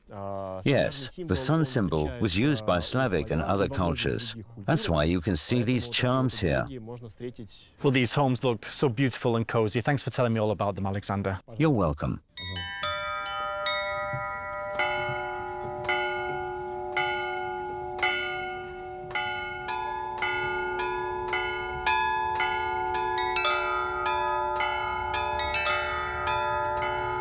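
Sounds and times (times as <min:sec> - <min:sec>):
speech: 0:00.1 - 0:12.7
church bells pealing across a town: 0:12.4 - 0:27.1.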